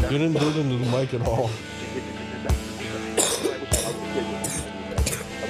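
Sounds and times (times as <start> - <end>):
speech: 0.1 - 2.1
short sharp coughs: 3.2 - 5.3.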